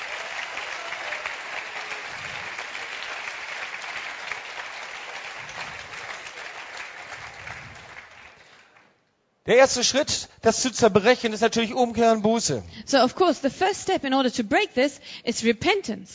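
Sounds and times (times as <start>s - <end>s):
audience applauding: 0.0s - 9.0s
speech: 9.5s - 16.1s.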